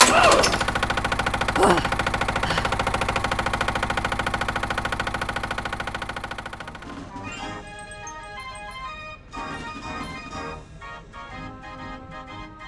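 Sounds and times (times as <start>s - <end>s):
Ferris wheel clanks and squeaks: 0.0s - 0.8s
Ferris wheel motor chugging drone: 0.1s - 7.1s.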